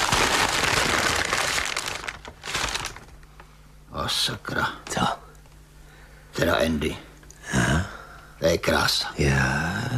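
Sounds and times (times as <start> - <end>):
tissue paper crinkling and rustling while being unwrapped: 0.0 - 3.3
speech: 4.1 - 5.2, 6.4 - 7.8, 8.4 - 9.9.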